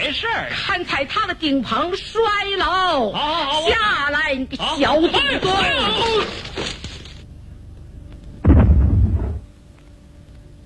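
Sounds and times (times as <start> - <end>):
speech: 0.1 - 6.6
explosion from a small homemade experiment indoors: 8.4 - 9.4.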